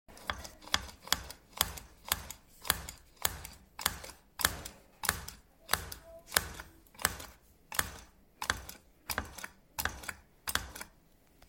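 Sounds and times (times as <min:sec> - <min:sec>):
hole punch: 0:00.1 - 0:11.0.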